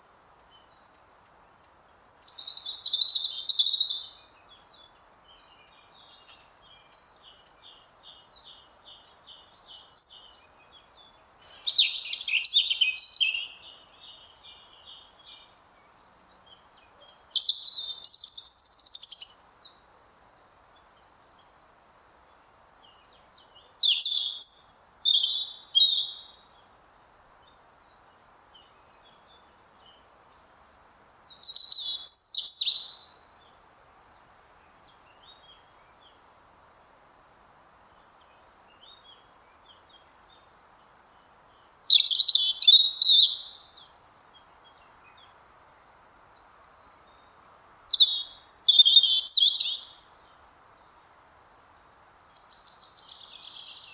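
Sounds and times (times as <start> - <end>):
European robin Erithacus rubecula singing: 1.6 - 19.7, 23.1 - 26.8, 27.4 - 33.2, 38.8 - 53.9.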